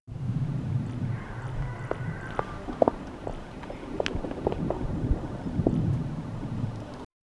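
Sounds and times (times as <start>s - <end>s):
gentle wind: 0.1s - 7.1s.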